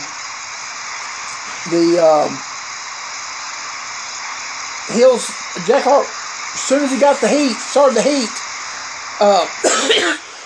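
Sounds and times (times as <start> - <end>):
speech: 1.6 - 2.5, 4.9 - 8.4, 9.2 - 10.2
person coughing: 9.6 - 10.4
throat clearing: 9.7 - 10.3.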